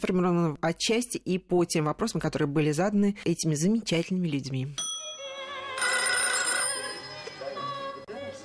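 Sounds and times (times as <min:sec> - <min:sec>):
speech: 0:00.0 - 0:04.8
electronic telephone ringing: 0:04.8 - 0:08.0.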